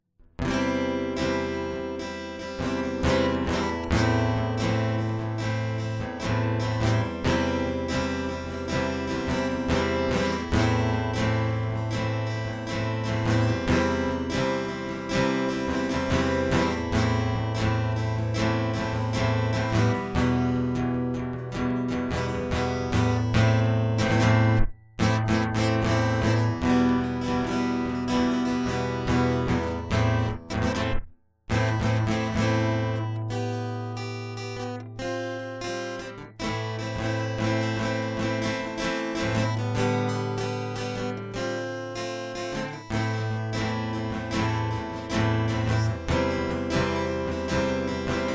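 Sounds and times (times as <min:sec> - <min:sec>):
guitar solo: 0:00.4 - 0:48.3.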